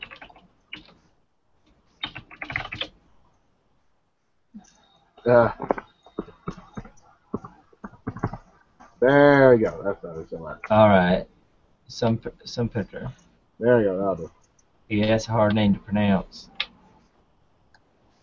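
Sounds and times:
typing on a computer keyboard: 0.0s - 1.0s, 2.0s - 3.0s, 5.6s - 8.5s
speech: 5.2s - 5.8s, 9.0s - 11.3s, 11.9s - 16.6s.

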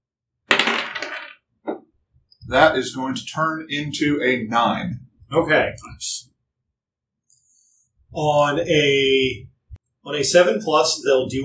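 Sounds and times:
dice clattering across a hard table: 0.5s - 1.8s
speech: 2.5s - 6.3s, 8.1s - 11.4s.

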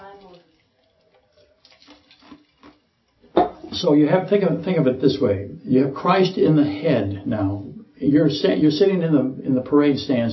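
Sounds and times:
water running from a faucet: 0.0s - 2.6s
speech: 3.8s - 10.3s.

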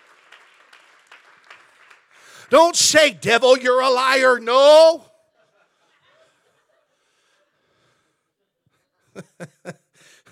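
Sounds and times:
audience clapping hands in praise: 0.0s - 2.8s
speech: 2.5s - 5.1s.

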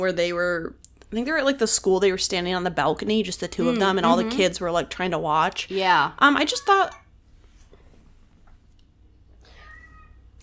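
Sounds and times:
speech: 0.0s - 7.0s
cat meowing: 9.5s - 10.2s.

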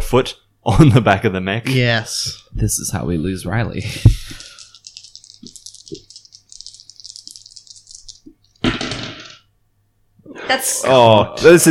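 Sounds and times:
speech: 0.1s - 4.3s, 10.5s - 11.6s
dice rattling: 4.2s - 9.4s.

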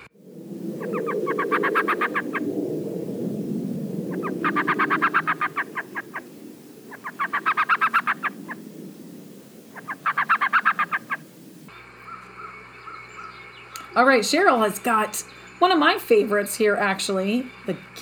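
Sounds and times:
elf owl call: 0.8s - 3.4s, 4.0s - 11.7s
speech: 14.0s - 18.0s.

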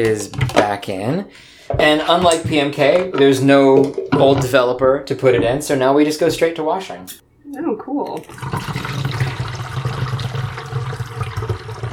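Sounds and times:
speech: 0.0s - 9.0s
water running from a faucet: 8.2s - 11.9s.

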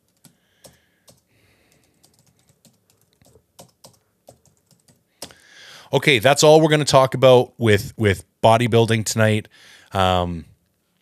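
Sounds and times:
typing a note on a computer keyboard: 0.0s - 5.4s
speech: 5.9s - 10.5s.

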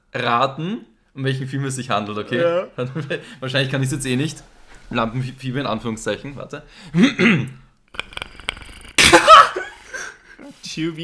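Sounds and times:
speech: 0.1s - 8.0s, 10.8s - 11.0s
person imitating the growl of an alien hunter creature from a film: 8.0s - 9.5s
laughter: 9.0s - 10.1s.

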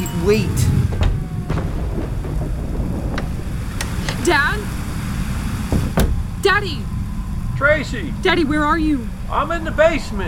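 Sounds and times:
speech: 0.2s - 0.7s, 4.2s - 4.7s, 6.4s - 6.9s, 7.6s - 10.2s
deep continuous rumble of thunder: 0.4s - 7.6s
steady hiss of rain: 1.2s - 7.5s.

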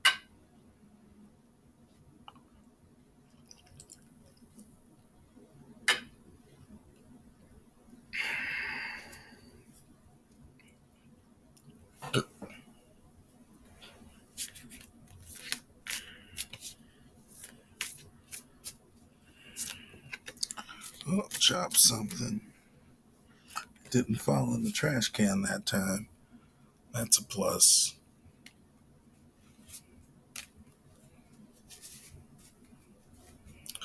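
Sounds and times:
low room hum: 0.0s - 33.8s
brief papery rustle: 14.4s - 18.8s, 31.6s - 33.6s
playing cards being flipped: 14.4s - 18.8s, 19.6s - 21.4s, 29.7s - 30.6s
speech: 21.5s - 22.5s, 23.9s - 26.1s, 27.0s - 28.0s.

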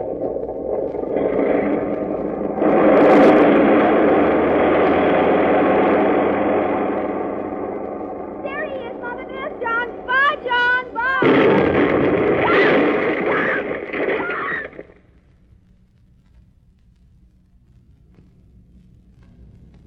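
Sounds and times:
airplane engines roaring during takeoff: 1.0s - 14.6s
person speaking: 8.4s - 11.3s.

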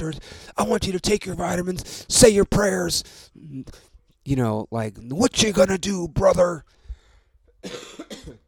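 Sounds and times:
speech: 0.0s - 6.8s, 7.6s - 8.4s
harsh coughs: 7.6s - 8.4s.

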